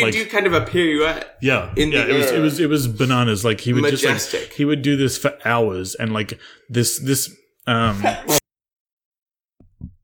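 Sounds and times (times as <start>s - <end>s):
speech: 0.0s - 8.4s
loud sneeze: 8.0s - 8.4s.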